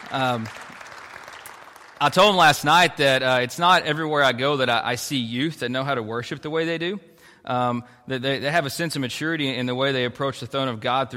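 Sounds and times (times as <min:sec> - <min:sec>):
audience of students at a church youth group clapping: 0:00.0 - 0:03.0
speech: 0:00.1 - 0:00.6, 0:02.0 - 0:11.1.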